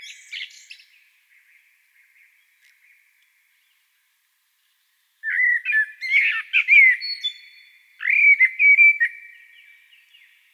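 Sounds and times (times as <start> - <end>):
Common blackbird Turdus merula singing: 0.0 - 2.2, 5.2 - 10.5.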